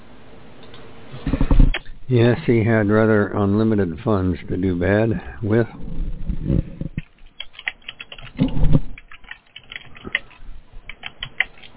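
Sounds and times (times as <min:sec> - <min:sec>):
speech: 0:02.1 - 0:06.7
typing on a computer keyboard: 0:07.3 - 0:11.7.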